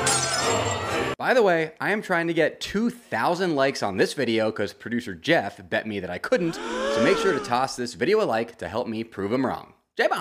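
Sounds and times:
glass camera lens shattering: 0:00.1 - 0:00.6
speech: 0:01.2 - 0:10.2.

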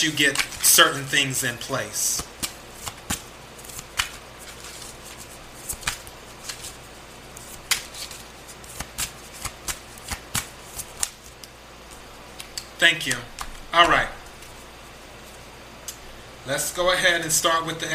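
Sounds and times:
speech: 0:00.0 - 0:02.3, 0:12.8 - 0:14.2, 0:16.4 - 0:17.9
playing cards drawn from a deck during a card reading: 0:00.3 - 0:00.7, 0:02.2 - 0:11.5, 0:12.4 - 0:13.6.

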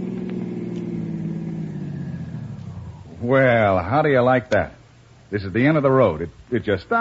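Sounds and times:
car engine rumbling as the car slows to a stop: 0:00.0 - 0:05.2
speech: 0:03.2 - 0:06.9.

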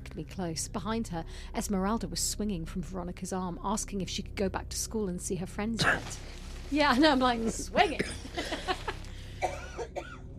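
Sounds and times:
speech: 0:00.2 - 0:08.7
person coughing in short harsh bursts: 0:05.8 - 0:06.2, 0:07.8 - 0:10.2
laughter: 0:06.9 - 0:09.2.

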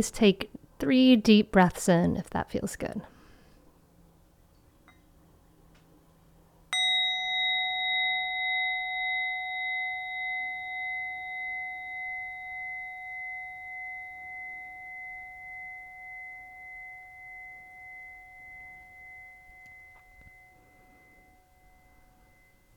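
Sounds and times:
speech: 0:00.0 - 0:03.1
meditation bell ringing: 0:06.7 - 0:22.7.

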